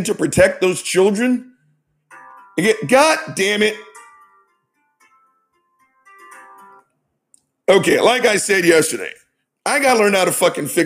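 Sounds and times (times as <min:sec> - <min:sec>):
speech: 0:00.0 - 0:01.5, 0:02.6 - 0:03.9, 0:07.7 - 0:10.8
text message notification chime through a Tesla car: 0:02.1 - 0:04.5.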